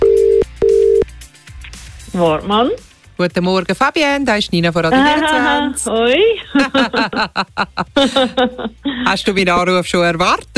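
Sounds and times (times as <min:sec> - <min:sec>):
telephone ringing tone during a call: 0:00.0 - 0:01.0
speech: 0:02.2 - 0:10.5
laughter: 0:06.4 - 0:09.2.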